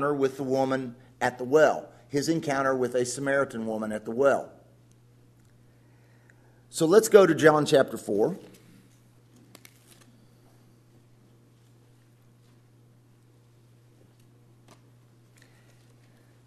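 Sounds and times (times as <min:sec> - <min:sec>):
speech: 0:00.0 - 0:04.6, 0:06.7 - 0:08.6
book pages turning: 0:09.3 - 0:10.5, 0:13.8 - 0:16.4.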